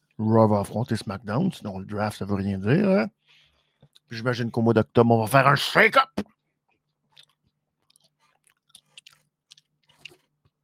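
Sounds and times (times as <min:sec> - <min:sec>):
speech: 0:00.2 - 0:03.2, 0:04.1 - 0:06.3
chewing of food: 0:06.7 - 0:10.6.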